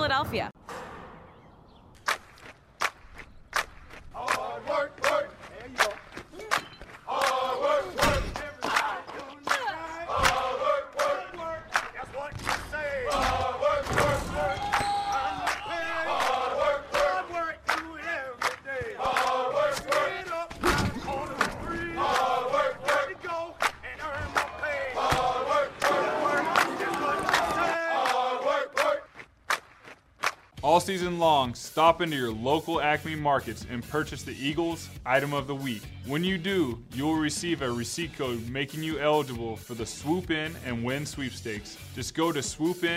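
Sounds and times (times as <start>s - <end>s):
speech: 0.2s - 0.6s, 30.9s - 42.9s
clapping: 2.0s - 7.4s, 8.4s - 12.6s, 15.4s - 15.6s, 16.2s - 20.0s, 23.6s - 24.6s, 25.8s - 30.5s
crowd of sports fans chanting and cheering: 3.6s - 29.7s.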